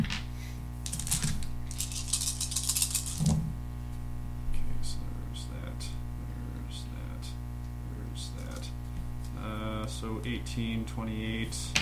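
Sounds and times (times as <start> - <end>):
steady low hum: 0.0 - 11.8
dice clattering across a hard tabletop: 0.9 - 3.4
speech: 10.3 - 11.8.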